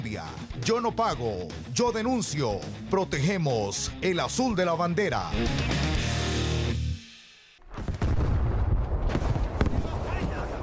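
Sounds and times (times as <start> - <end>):
speech: 0.1 - 5.9
gunfire in a marine combat drama: 7.7 - 10.6.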